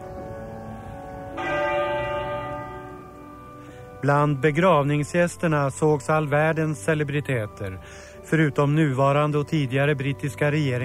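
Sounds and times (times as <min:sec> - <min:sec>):
muffled church bell of Westminster Abbey in London tolling during a funeral: 0:01.2 - 0:06.6
speech: 0:04.0 - 0:10.8.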